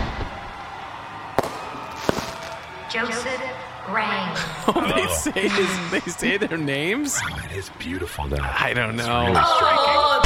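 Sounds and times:
fireworks bangs: 1.4s - 2.7s
speech: 2.9s - 10.1s
laughter: 4.3s - 10.1s.

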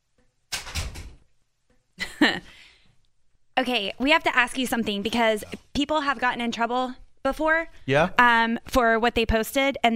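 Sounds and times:
door opening: 0.5s - 1.2s
speech: 3.6s - 9.9s.

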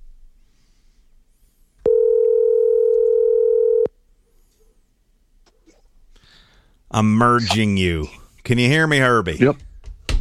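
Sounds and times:
telephone dial tone when placing a call: 1.8s - 3.9s
speech: 6.9s - 10.1s.

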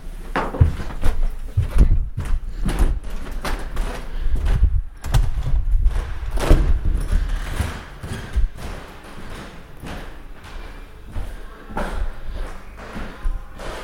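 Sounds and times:
heavy footsteps on old wooden floorboards: 0.4s - 13.8s.

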